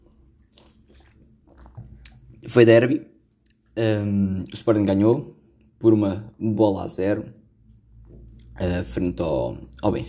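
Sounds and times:
person sipping and swallowing water: 0.0 - 2.5, 8.2 - 8.6
wet mouth sounds: 0.4 - 2.5, 8.2 - 8.6
speech: 2.4 - 3.1, 3.8 - 7.4, 8.6 - 10.0.

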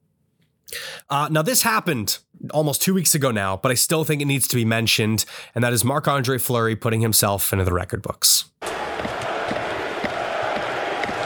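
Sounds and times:
speech: 1.1 - 9.3
large hockey arena home crowd chanting a player's name: 8.6 - 11.2.

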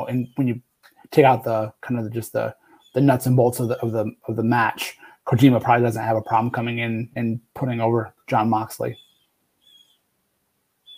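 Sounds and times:
faint room hiss: 0.0 - 10.9
speech: 0.1 - 9.0
bird calling outside open window in thin high whistle: 2.8 - 3.1, 8.9 - 10.1.

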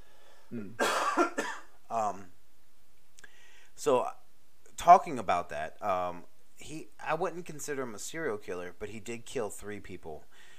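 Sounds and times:
short voiced throaty sounds: 0.5 - 0.8
speech: 0.5 - 1.4, 3.8 - 4.2, 4.8 - 10.5
person coughing: 0.5 - 1.8.

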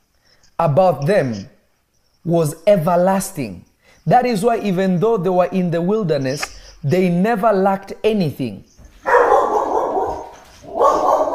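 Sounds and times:
speech: 0.6 - 1.6, 2.2 - 8.7
dog barking: 9.0 - 11.3.

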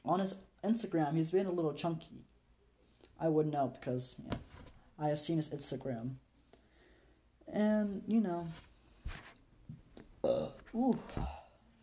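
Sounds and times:
speech: 0.0 - 2.3, 3.2 - 6.2, 7.5 - 9.3, 10.2 - 11.4
person burping loudly: 10.2 - 11.5.

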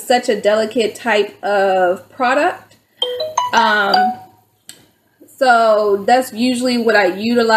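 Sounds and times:
speech: 0.1 - 2.7, 3.5 - 4.2, 5.4 - 7.5
phone notification chime: 3.0 - 4.4.

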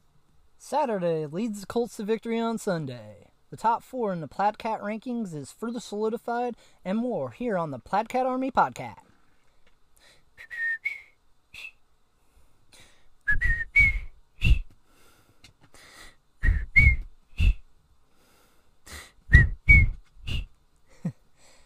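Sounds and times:
speech: 0.6 - 9.0
person whistling a tune: 10.4 - 11.8, 13.3 - 14.7, 16.4 - 17.6, 19.3 - 20.5
soft thumping beats: 16.4 - 17.6.

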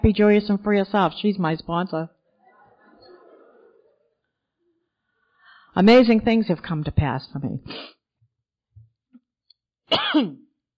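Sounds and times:
speech: 0.0 - 2.2, 5.8 - 8.0, 9.9 - 10.4
laughter: 2.3 - 5.0
person coughing from something in the air: 9.9 - 10.5.

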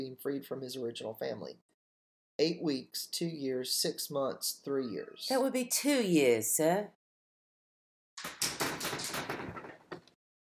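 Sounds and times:
speech: 0.0 - 1.8, 2.4 - 7.0
rapid knocks on a door: 8.4 - 10.0.

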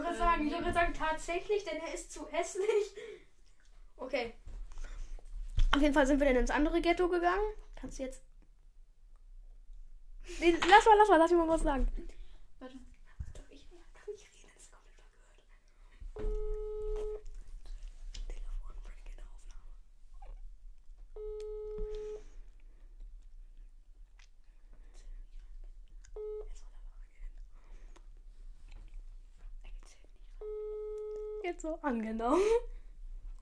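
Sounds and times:
speech: 0.4 - 3.2, 4.0 - 4.4, 5.7 - 8.3, 10.3 - 12.9, 31.5 - 32.8
unanswered phone call ringback tone: 16.2 - 17.2, 21.2 - 22.3, 26.2 - 26.5, 30.4 - 31.5.

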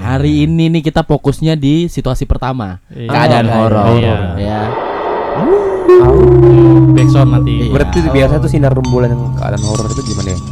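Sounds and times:
speech: 0.1 - 10.5
wolf howl sound effect: 4.7 - 8.0
deep rumbling drone: 4.7 - 9.6.

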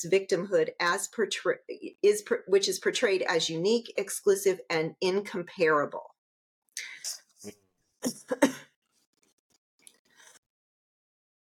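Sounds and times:
speech: 0.0 - 6.1, 7.4 - 8.7
person coughing fit: 8.0 - 8.7.

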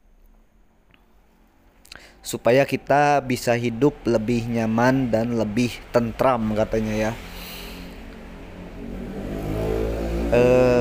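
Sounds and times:
speech: 2.2 - 7.3, 10.3 - 10.7
motorcycle engine revving loudly while passing by: 6.6 - 10.7.

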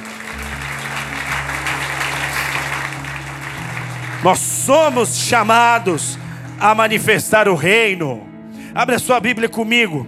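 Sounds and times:
audience applauding loudly: 0.0 - 6.2
low sustained organ or keyboard hum: 0.0 - 8.7
speech: 4.2 - 10.0.

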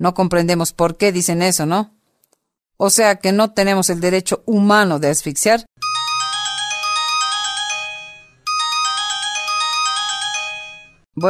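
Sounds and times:
speech: 0.0 - 2.0, 2.8 - 5.8
mobile phone ringtone with a bell-like melodic pattern: 5.8 - 11.2.

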